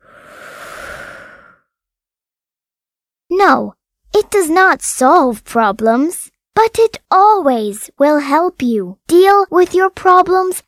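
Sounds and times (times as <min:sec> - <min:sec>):
slow breathing in and out: 0:00.0 - 0:01.8
speech: 0:03.4 - 0:10.6.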